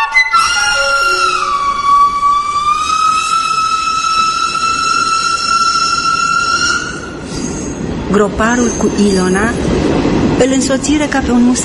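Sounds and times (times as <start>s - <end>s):
train rumbling arriving at a station: 0.2s - 11.6s
train whistle at a station: 0.3s - 7.7s
speech: 8.2s - 11.6s.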